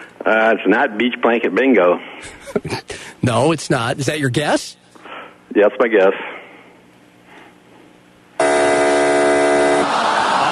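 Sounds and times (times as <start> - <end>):
speech: 0.2 - 4.8, 5.6 - 6.3
laughter: 2.2 - 3.0, 9.6 - 10.4
game-show buzzer marking a wrong answer to a movie quiz question: 8.4 - 10.4.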